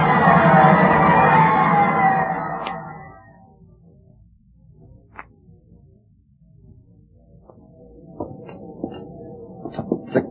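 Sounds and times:
boxing match crowd yelling and cheering: 0.0 - 3.3.

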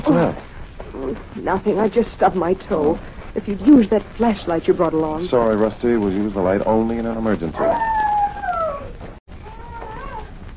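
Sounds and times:
speech: 0.0 - 0.5, 1.1 - 8.0
dog howling: 7.5 - 10.4.

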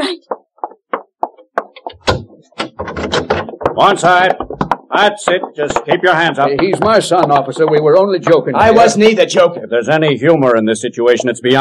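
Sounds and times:
sharp knocks on a door: 0.6 - 9.7
latch clattering: 1.8 - 3.7
door being pulled open with rattling and scraping: 2.0 - 3.6
speech: 3.8 - 11.6.

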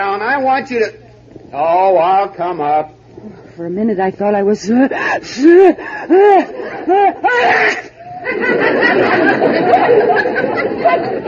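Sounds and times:
speech: 0.0 - 11.2
murmuring noise: 0.6 - 1.9, 2.7 - 11.2
rising gasping breaths: 4.9 - 6.9
laughter: 5.3 - 11.2
sneeze from inside a closet: 7.3 - 8.0.

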